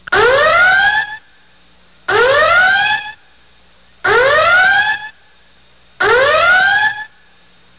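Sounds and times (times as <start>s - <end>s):
alarm: 0.1s - 1.3s, 2.1s - 3.2s, 4.0s - 5.2s, 6.0s - 7.2s.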